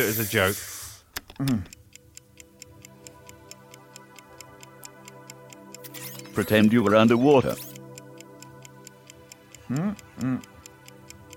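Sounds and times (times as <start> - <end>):
speech: 0.0 - 1.8, 6.4 - 7.7, 9.7 - 10.5
person gasping: 1.4 - 1.7, 9.6 - 10.5
clock ticking: 1.4 - 11.3.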